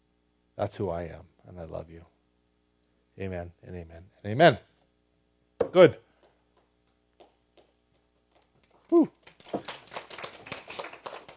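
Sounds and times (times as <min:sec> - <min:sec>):
speech: 0:00.6 - 0:02.2, 0:03.2 - 0:04.7, 0:05.7 - 0:06.0, 0:08.9 - 0:09.2
church congregation applauding at the end of a service: 0:08.4 - 0:11.3.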